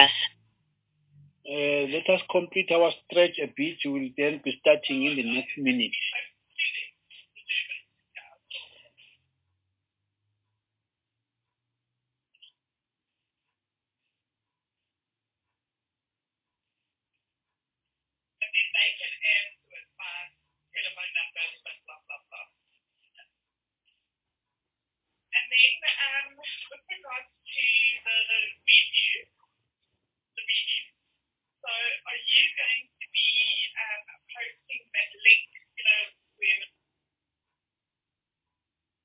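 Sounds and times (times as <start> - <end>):
tinny voice talking through a phone line in a room: 0.0 - 0.3, 1.5 - 9.2, 18.4 - 22.6, 25.4 - 29.2, 30.4 - 30.9, 31.7 - 36.7
speech: 1.9 - 6.3.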